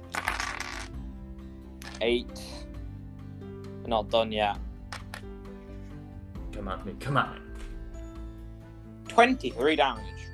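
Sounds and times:
handful of many dice clattering and tumbling together: 0:00.0 - 0:01.0, 0:01.8 - 0:02.1, 0:04.9 - 0:05.2
speech: 0:02.0 - 0:02.6, 0:03.9 - 0:04.6, 0:06.6 - 0:07.4, 0:09.2 - 0:10.3.

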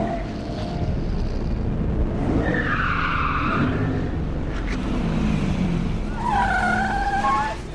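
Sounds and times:
road noise: 0:00.0 - 0:07.7
steady car engine rumble: 0:00.0 - 0:07.7
car tires squealing as a car swerves hard: 0:02.3 - 0:04.0, 0:04.9 - 0:07.7.

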